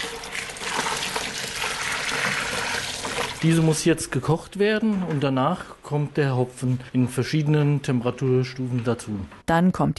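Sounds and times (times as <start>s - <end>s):
wort poured from plastic buckets into kettles: 0.0s - 3.4s
speech: 3.4s - 9.9s.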